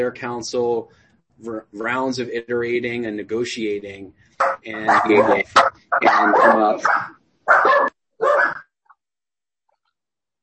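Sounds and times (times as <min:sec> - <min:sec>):
speech: 0:00.0 - 0:07.9
dog barking: 0:04.4 - 0:08.6.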